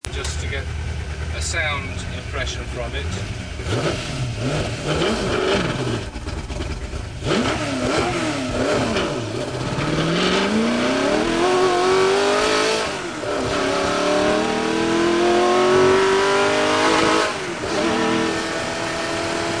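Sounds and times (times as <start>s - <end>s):
Ford GT40 car engine: 0.0s - 19.5s.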